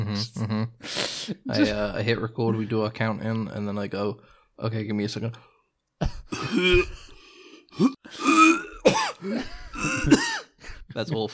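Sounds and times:
speech: 0.1 - 7.0, 7.8 - 8.6, 9.2 - 10.2, 10.9 - 11.3
person making exaggerated vomiting coughs: 6.0 - 10.6
laughter: 10.9 - 11.3.

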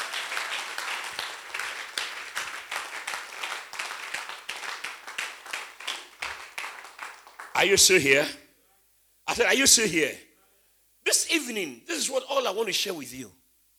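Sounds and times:
crowd clapping hands: 0.0 - 7.7
speech: 7.6 - 8.4, 9.4 - 10.3, 11.1 - 13.4.

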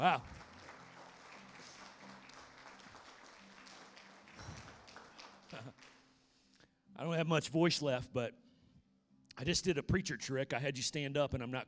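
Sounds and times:
speech: 0.0 - 0.4, 7.0 - 8.4, 9.4 - 11.6
crowd clapping in a reverberant room: 0.0 - 6.2.

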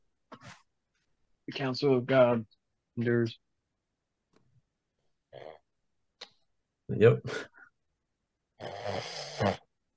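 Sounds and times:
speech: 1.5 - 3.4, 6.9 - 7.5, 9.4 - 9.6
rough snore with raspy nasal rattle: 8.6 - 9.7.

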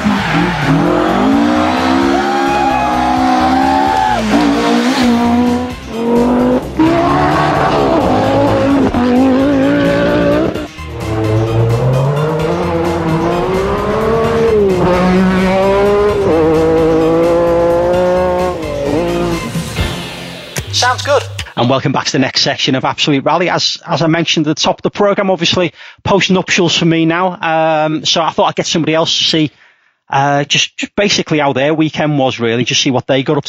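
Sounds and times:
tires squealing and skidding: 0.0 - 19.2
car engine revving: 0.0 - 20.6
speech: 21.7 - 33.4.

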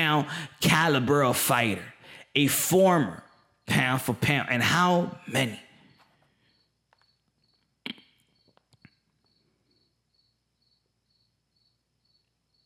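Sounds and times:
speech: 0.1 - 5.6
crickets chirping: 3.1 - 3.7, 5.6 - 12.6.

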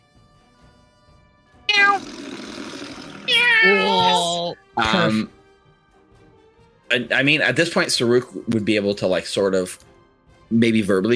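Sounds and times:
cat meowing: 1.7 - 2.1, 3.3 - 4.6
speech: 3.6 - 5.4, 6.9 - 9.9, 10.5 - 11.1.

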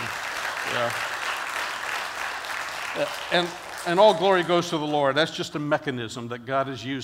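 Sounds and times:
crowd applauding: 0.0 - 5.4
speech: 0.7 - 1.1, 3.0 - 7.0.

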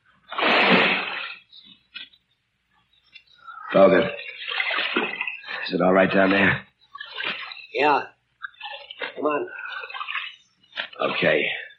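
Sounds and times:
water sloshing as it settles: 0.2 - 2.2, 3.0 - 11.7
big splash of person dropping into shallow waist-deep water: 0.3 - 1.4
speech: 3.8 - 4.2, 5.7 - 6.7, 7.8 - 8.2, 9.2 - 9.6, 11.0 - 11.6.

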